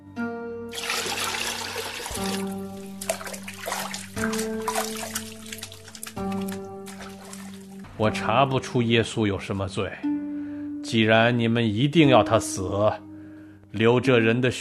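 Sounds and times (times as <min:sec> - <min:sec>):
water splashing and pouring in a basin for hand washing: 0:00.7 - 0:07.9
speech: 0:08.0 - 0:10.1, 0:10.9 - 0:13.0, 0:13.7 - 0:14.5.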